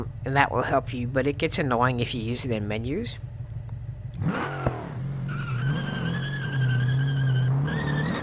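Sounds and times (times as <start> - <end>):
video game car engine roaring and droning: 0.0 - 8.2
speech: 0.2 - 3.3, 4.2 - 4.6
video game car skidding with tire squeal: 4.2 - 8.2.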